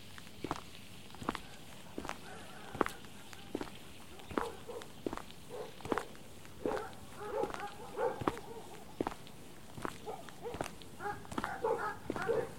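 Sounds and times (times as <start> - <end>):
dogs running on a dog meadow: 0.6 - 9.2, 9.9 - 12.5
dogs yipping and barking whinily: 1.4 - 3.5, 4.1 - 8.9, 10.0 - 12.5.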